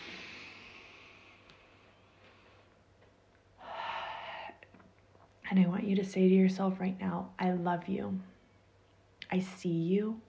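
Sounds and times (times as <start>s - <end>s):
person taking a deep breath in and out: 0.0s - 2.8s, 3.6s - 4.6s
speech: 5.5s - 8.3s, 9.3s - 10.2s.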